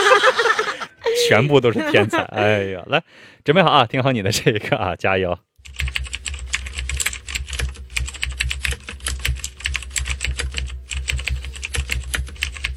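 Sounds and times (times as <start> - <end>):
laughter: 0.0 - 2.8
speech: 1.3 - 5.8
computer keyboard typing: 5.6 - 12.7.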